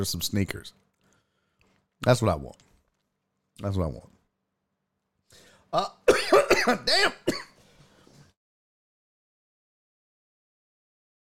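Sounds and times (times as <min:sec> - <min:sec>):
speech: 0:00.0 - 0:00.8, 0:02.0 - 0:02.7, 0:03.6 - 0:04.1, 0:05.3 - 0:07.5
faint breath: 0:01.0 - 0:01.8, 0:05.3 - 0:05.7, 0:07.6 - 0:08.3
loud coughs: 0:05.8 - 0:07.6.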